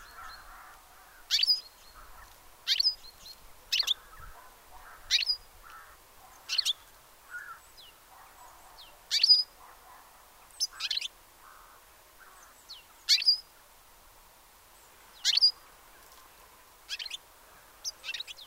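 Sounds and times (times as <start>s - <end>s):
faint background noise: 0.0s - 18.4s
European goldfinch Carduelis carduelis giving short bright high chirps: 1.3s - 5.5s, 6.4s - 7.9s, 8.8s - 9.6s, 10.6s - 11.1s, 12.4s - 13.5s, 15.2s - 15.6s, 16.9s - 17.2s, 17.8s - 18.4s.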